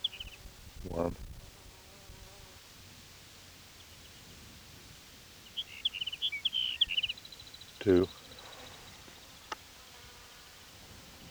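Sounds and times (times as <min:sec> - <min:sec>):
sage sparrow song from a colony: 0:00.0 - 0:00.5, 0:05.4 - 0:09.6
quiet noise: 0:00.0 - 0:11.2
speech: 0:00.8 - 0:01.3, 0:07.8 - 0:08.2.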